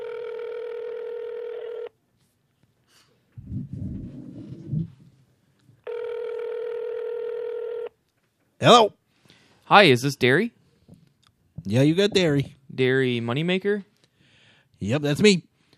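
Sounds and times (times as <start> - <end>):
telephone tone as a call is placed: 0.0 - 2.0, 5.8 - 8.0
clatter and rustle: 3.3 - 5.8
speech: 3.7 - 4.3, 8.6 - 9.0, 9.7 - 10.6, 11.7 - 13.9, 14.8 - 15.5.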